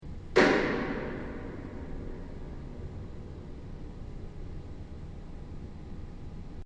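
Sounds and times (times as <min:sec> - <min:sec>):
piano hit: 0:00.3 - 0:03.7.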